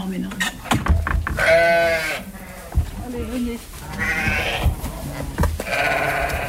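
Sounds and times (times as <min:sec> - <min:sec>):
flock of ewes bleating: 0:01.4 - 0:06.4.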